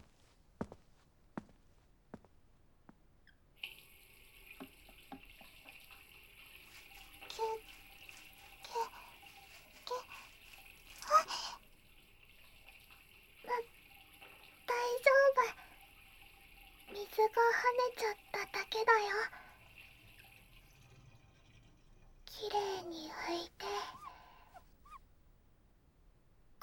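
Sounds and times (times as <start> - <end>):
water splashing: 3.6 - 20.8
tap water running while washing a mug at a sink: 3.6 - 24.8
speech: 17.3 - 19.4.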